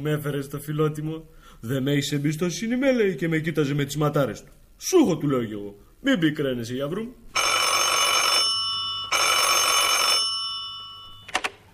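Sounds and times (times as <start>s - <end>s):
speech: 0.0s - 7.5s
telephone bell ringing: 7.4s - 11.4s
quick clicks of a telephone: 11.3s - 11.6s.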